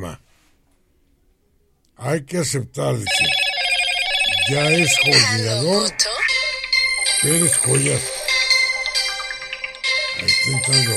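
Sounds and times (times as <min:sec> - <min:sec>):
speech: 0:02.0 - 0:03.4, 0:04.5 - 0:06.2, 0:07.2 - 0:08.2, 0:10.4 - 0:10.9
phone ringtone signalling an incoming call: 0:03.1 - 0:10.9.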